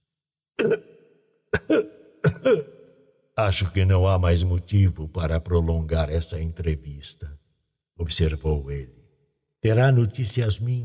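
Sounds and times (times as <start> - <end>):
speech: 0.6 - 0.9, 3.4 - 7.4, 8.0 - 9.0, 9.6 - 10.8
man giving short dry coughs: 0.6 - 1.0, 1.6 - 2.9.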